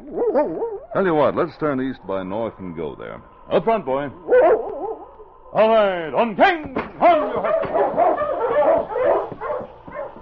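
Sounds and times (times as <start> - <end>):
sled dog whimpering: 0.0 - 1.0, 7.4 - 10.2
sled dog barking and yipping on the trail: 0.1 - 0.8, 4.3 - 5.1, 7.0 - 10.2
speech: 0.1 - 4.7, 5.5 - 8.2.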